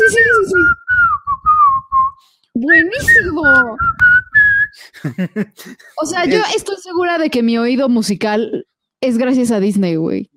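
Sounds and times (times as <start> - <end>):
whistled melody: 0.0 - 4.8
laughter: 4.8 - 6.5
speech: 5.0 - 10.3.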